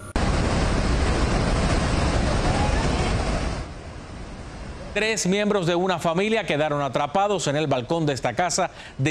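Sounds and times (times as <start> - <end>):
rushing floodwater with mud and debris: 0.2 - 5.3
speech: 5.0 - 9.0.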